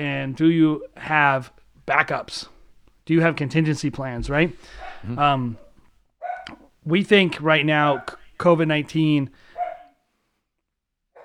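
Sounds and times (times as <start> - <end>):
speech: 0.0 - 2.5, 3.1 - 5.6, 6.4 - 9.5
dog barking: 4.6 - 6.7, 7.9 - 8.2, 9.5 - 10.0.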